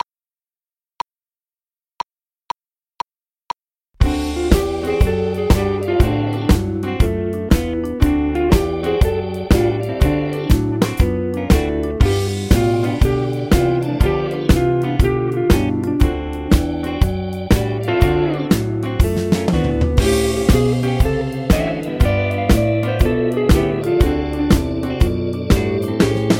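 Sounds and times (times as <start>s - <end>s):
drums: 4.0s - 26.3s
guitar: 4.0s - 26.3s.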